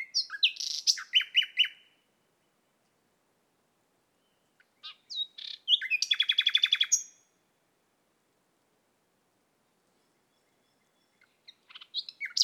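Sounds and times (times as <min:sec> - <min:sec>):
common nightingale Luscinia megarhynchos song: 0:00.0 - 0:02.9, 0:04.0 - 0:07.5, 0:09.6 - 0:12.4.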